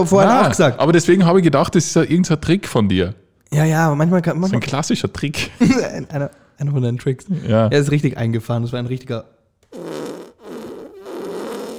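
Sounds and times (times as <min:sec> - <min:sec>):
speech: 0:00.0 - 0:09.9
fart noise: 0:09.6 - 0:11.7.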